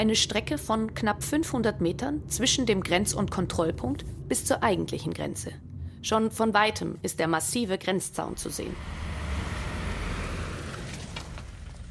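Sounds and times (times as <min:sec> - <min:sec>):
speech: 0:00.0 - 0:09.1
cars driving past at a border crossing with tire hiss: 0:08.3 - 0:11.8.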